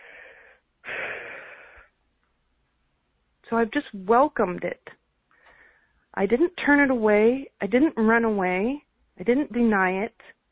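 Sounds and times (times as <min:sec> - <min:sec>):
deep breath: 0:00.0 - 0:02.0, 0:05.3 - 0:06.1
speech: 0:03.5 - 0:05.0, 0:06.2 - 0:10.4.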